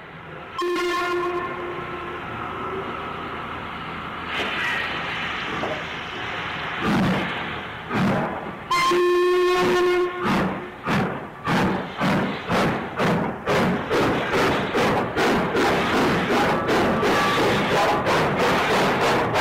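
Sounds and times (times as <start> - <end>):
continuous rumble of a parcels train: 0.0 - 19.3
steam locomotive whistle on a nine-van parcels train at night: 0.6 - 2.2, 8.7 - 10.4, 16.9 - 18.0.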